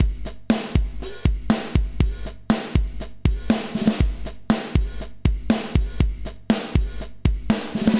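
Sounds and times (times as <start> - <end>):
electronic beat: 0.0 - 7.9.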